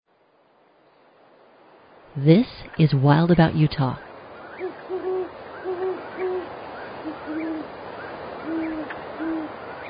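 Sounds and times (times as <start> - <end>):
speech: 2.2 - 4.1
faint higher bird chirps: 3.9 - 9.8
great horned owl hooting: 4.0 - 9.8.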